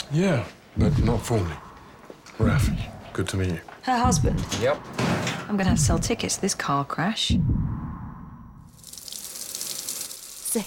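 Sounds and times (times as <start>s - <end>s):
speech: 0.1s - 1.6s, 2.4s - 7.8s
water gushing from a tap in a hospital scrub room: 8.7s - 10.6s.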